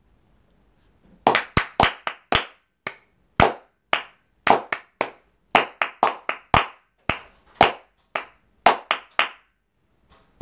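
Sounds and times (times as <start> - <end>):
two students clapping: 1.3 - 9.4.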